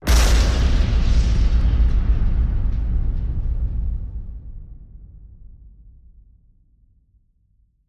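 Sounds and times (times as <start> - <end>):
anime explosion: 0.0 - 5.8.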